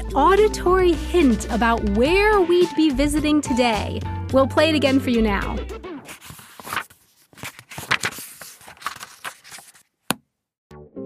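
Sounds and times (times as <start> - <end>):
speech: 0.1 - 5.8
book pages flipped quickly: 6.0 - 10.2.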